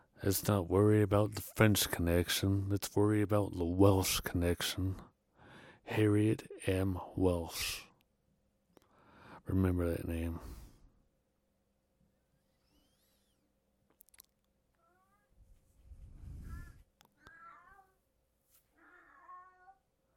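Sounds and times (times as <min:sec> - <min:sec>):
speech: 0:00.2 - 0:05.1, 0:05.9 - 0:07.9, 0:09.5 - 0:10.6
cats meowing: 0:18.8 - 0:19.8.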